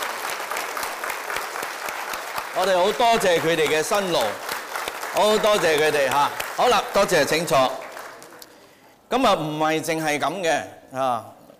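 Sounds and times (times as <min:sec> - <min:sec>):
men applauding at a gathering: 0:00.0 - 0:08.7
speech: 0:02.6 - 0:04.4, 0:05.2 - 0:07.8, 0:09.1 - 0:11.4.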